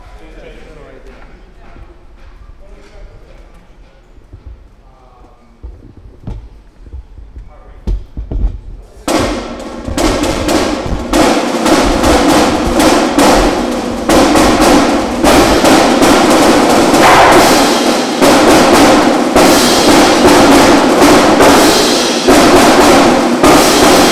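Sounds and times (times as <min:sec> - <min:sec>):
drum intro: 0:05.7 - 0:24.1.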